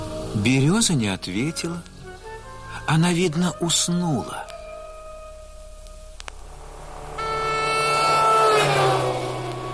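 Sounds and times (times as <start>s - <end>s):
speech: 0.4s - 1.9s, 2.9s - 4.5s
car engine starting and revving: 6.1s - 9.7s.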